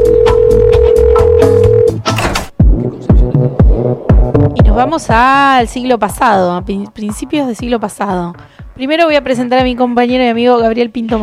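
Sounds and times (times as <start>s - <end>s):
loud steady telephone dial tone: 0.0s - 2.0s
deep thumping drops: 2.4s - 5.8s
speech: 4.8s - 11.2s.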